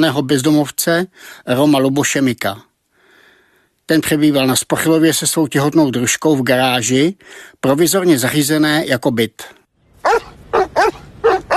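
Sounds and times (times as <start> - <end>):
speech: 0.0 - 2.7, 3.9 - 11.0
wild dogs barking in short sharp yelps: 10.0 - 11.5.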